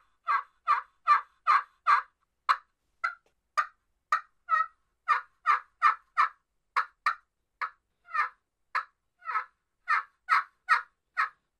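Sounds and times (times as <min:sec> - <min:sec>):
turkey hen yelps made on the back side of a friction call: 0:00.2 - 0:02.1, 0:04.1 - 0:11.4.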